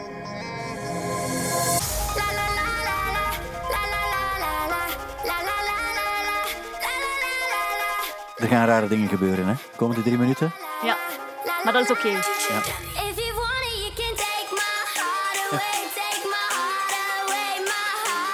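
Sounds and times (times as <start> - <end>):
euphoric hardcore dance track with synth melodies and pounding bass: 0.2 - 18.3
speech: 8.5 - 11.0, 11.6 - 13.1.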